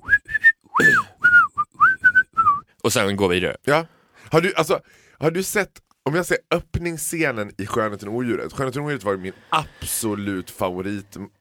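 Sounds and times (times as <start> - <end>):
person whistling a tune: 0.0 - 2.7
speech: 0.8 - 1.1, 2.8 - 11.4.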